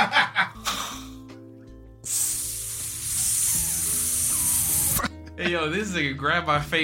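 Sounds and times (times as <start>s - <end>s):
fire sizzling: 2.0s - 5.0s
speech: 5.4s - 6.8s.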